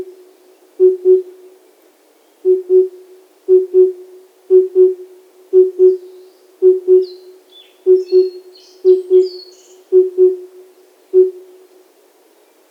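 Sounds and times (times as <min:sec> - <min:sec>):
cuckoo hooting in the wild in Hokkaido: 0:02.4 - 0:05.0, 0:05.6 - 0:10.6, 0:11.2 - 0:11.5
high chirps from other birds: 0:06.9 - 0:10.1.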